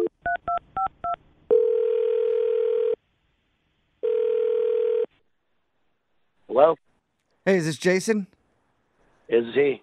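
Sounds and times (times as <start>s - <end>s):
phone ringback tone: 1.5s - 3.0s, 4.0s - 5.1s
speech: 6.6s - 6.8s, 7.4s - 8.3s, 9.3s - 9.8s.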